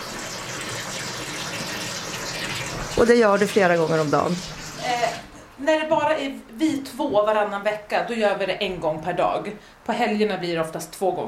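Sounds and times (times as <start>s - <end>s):
water gushing into a canister being filled: 0.0s - 5.3s
speech: 3.0s - 11.2s.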